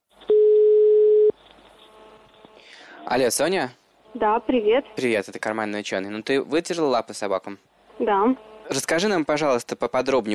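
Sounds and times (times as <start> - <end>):
telephone ringback tone while placing a call: 0.3 - 1.3
speech: 3.1 - 10.3.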